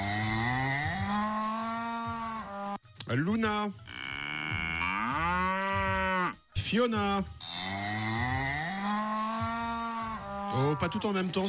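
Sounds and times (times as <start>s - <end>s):
cow mooing with a long, loud bellow: 0.0s - 2.8s, 3.9s - 6.4s, 7.4s - 11.2s
speech: 3.1s - 4.1s, 6.6s - 7.8s, 10.5s - 11.4s.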